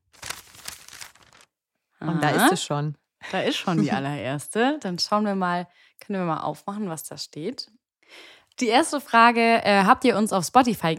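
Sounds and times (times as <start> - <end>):
papery rustling and fluttering of a letter: 0.0 - 1.6
speech: 2.0 - 10.9
laughter: 2.2 - 2.6, 3.4 - 4.0.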